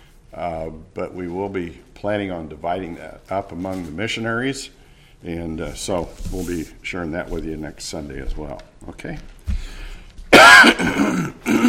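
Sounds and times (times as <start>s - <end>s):
speech: 0.3s - 9.8s, 10.6s - 11.6s
speaker clearing throat during a church service: 10.3s - 11.6s
speaker coughing during a church service: 10.3s - 11.6s.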